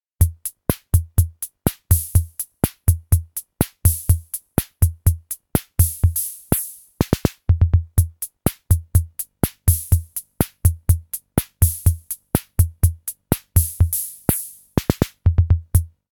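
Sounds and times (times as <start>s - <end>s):
SR-88 drum machine pattern: 0.2s - 16.0s.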